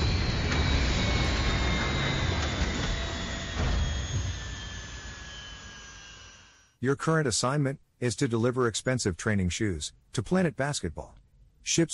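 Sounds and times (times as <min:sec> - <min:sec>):
video game spaceship engine roar entering atmosphere and landing: 0:00.0 - 0:06.7
speech: 0:06.8 - 0:11.9.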